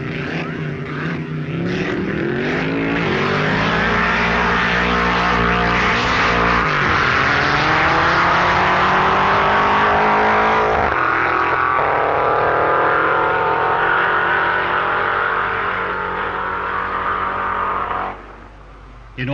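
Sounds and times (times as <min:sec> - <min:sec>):
4.7-litre Cobra sports car and 1.5-litre Dragon Dragster engines roaring in a drag race: 0:00.0 - 0:19.3.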